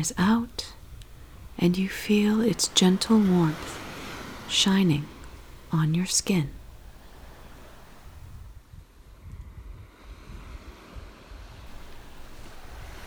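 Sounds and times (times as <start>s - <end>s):
speech: 0.0s - 0.7s, 1.6s - 3.8s, 4.5s - 5.1s, 5.7s - 6.6s
ocean surf washing in and out: 0.0s - 8.5s, 11.7s - 13.0s
low wind rumble: 0.0s - 8.6s, 11.7s - 13.0s.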